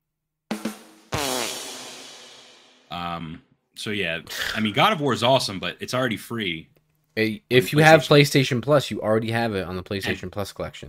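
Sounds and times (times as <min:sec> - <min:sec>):
cartoonish fart sound effect: 0:01.1 - 0:02.6
speech: 0:02.9 - 0:10.8.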